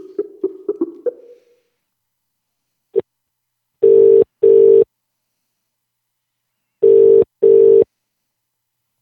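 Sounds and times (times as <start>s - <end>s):
telephone ringing in a double-burst pattern: 3.8s - 4.8s, 6.8s - 7.8s.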